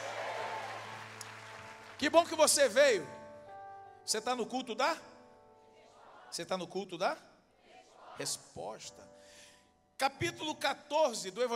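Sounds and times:
audience applauding: 0:00.0 - 0:02.8
speech: 0:02.0 - 0:03.2, 0:04.1 - 0:05.1, 0:06.3 - 0:07.3, 0:08.2 - 0:09.2, 0:10.0 - 0:11.5.

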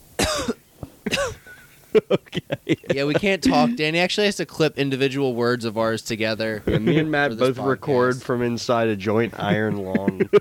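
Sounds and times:
two people coughing harshly: 0:00.2 - 0:01.5
laughter: 0:01.2 - 0:03.8, 0:06.6 - 0:07.5, 0:09.2 - 0:10.3
speech: 0:02.0 - 0:10.3
throaty catch between coughs: 0:03.4 - 0:03.8.

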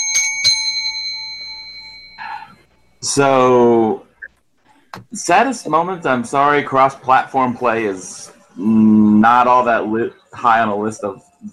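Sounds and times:
bright metallic bell strikes: 0:00.0 - 0:02.6
chime-like sound: 0:00.0 - 0:03.0
speech: 0:03.0 - 0:04.0, 0:05.1 - 0:11.5.

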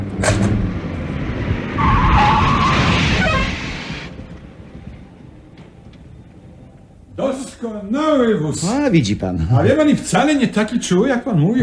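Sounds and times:
car engine rumbling as the car approaches from a test drive: 0:00.0 - 0:07.2
car tires squealing as it brakes hard: 0:00.2 - 0:04.3
speech: 0:07.8 - 0:11.6.

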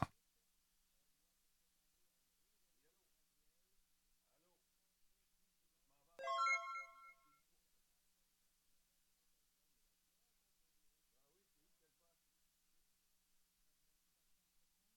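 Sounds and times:
phone ringtone for an incoming call: 0:06.2 - 0:07.3.

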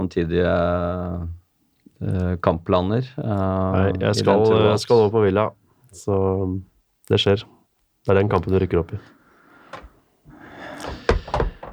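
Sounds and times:
speech: 0:00.1 - 0:01.4, 0:02.0 - 0:09.8
knocking on a wooden table: 0:10.9 - 0:11.7.

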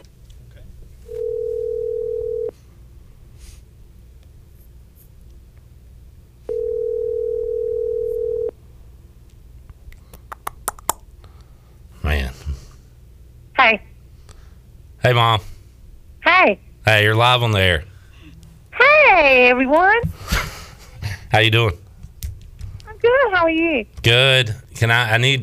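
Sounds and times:
ringback tones from an outgoing phone call: 0:01.1 - 0:02.5, 0:06.5 - 0:08.5
speech: 0:15.0 - 0:15.4, 0:16.4 - 0:17.9, 0:19.2 - 0:20.4, 0:21.3 - 0:21.8, 0:23.2 - 0:25.4.

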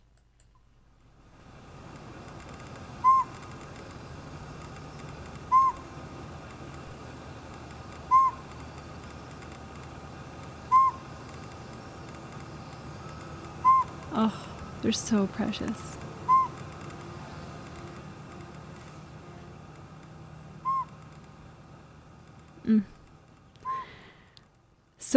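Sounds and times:
northern pygmy owl tooting call: 0:03.0 - 0:03.5, 0:05.0 - 0:05.9, 0:08.0 - 0:08.6, 0:10.6 - 0:11.2, 0:12.6 - 0:14.4, 0:16.2 - 0:16.7, 0:20.6 - 0:21.0, 0:23.6 - 0:23.9
speech: 0:14.2 - 0:16.0.

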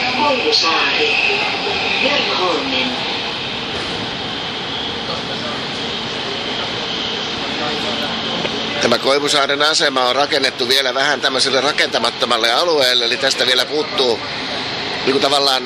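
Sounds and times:
metro train rumbling through tunnel beneath the Gulf of Finland: 0:00.0 - 0:15.6
speech: 0:00.2 - 0:03.2, 0:08.8 - 0:14.4, 0:15.1 - 0:15.6.

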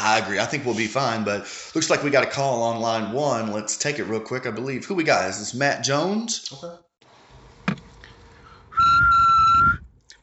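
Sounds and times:
speech: 0:00.1 - 0:06.8
nose whistling: 0:08.7 - 0:09.9.

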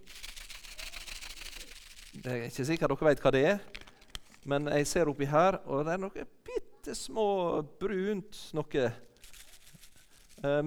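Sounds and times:
paper bag being handled and opened: 0:00.0 - 0:05.6, 0:08.4 - 0:10.6
speech: 0:02.2 - 0:03.8, 0:04.4 - 0:09.1, 0:10.4 - 0:10.6.

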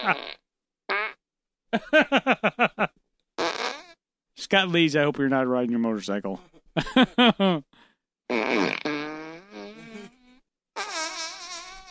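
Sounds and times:
speech: 0:00.0 - 0:00.4, 0:01.7 - 0:02.9, 0:04.4 - 0:09.0
flatulence from a corpse in a morgue: 0:00.0 - 0:01.2, 0:03.4 - 0:04.0, 0:08.3 - 0:11.9.

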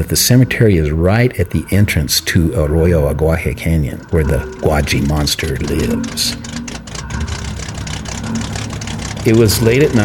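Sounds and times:
speech: 0:00.0 - 0:06.5, 0:09.2 - 0:10.0
police car engine running: 0:00.0 - 0:10.0.

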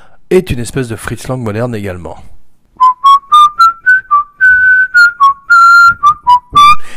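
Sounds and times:
speech: 0:00.3 - 0:02.3
person whistling a film leitmotiv tune: 0:02.8 - 0:06.9.

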